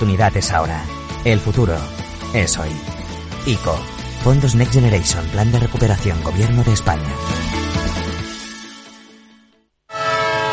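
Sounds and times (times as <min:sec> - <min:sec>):
speech: 0:00.0 - 0:07.6
horn of a departing train: 0:09.9 - 0:10.5.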